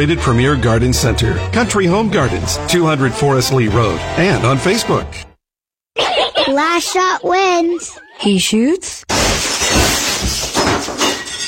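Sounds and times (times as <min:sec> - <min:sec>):
speech: 0:00.0 - 0:05.3, 0:06.5 - 0:09.7
laughter: 0:06.0 - 0:08.3
window glass shattering: 0:09.1 - 0:11.4.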